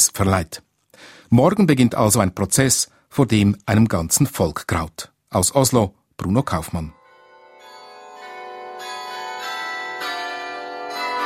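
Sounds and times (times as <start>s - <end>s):
speech: 0.1s - 0.7s, 1.3s - 7.0s
city hall carillon chiming the hour: 6.9s - 11.2s.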